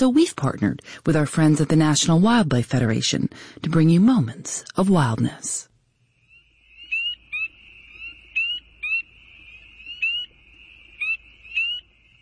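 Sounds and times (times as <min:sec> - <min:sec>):
speech: 0:00.0 - 0:05.7
spring peeper tree frogs chorus: 0:06.1 - 0:12.1.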